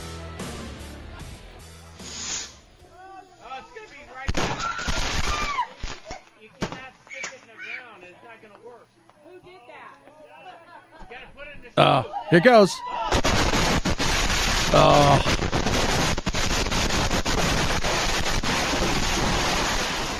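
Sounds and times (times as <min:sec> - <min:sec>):
box of fireworks exploding all at once: 0:04.2 - 0:06.0, 0:13.1 - 0:20.1
speech: 0:11.8 - 0:12.9, 0:14.7 - 0:15.4.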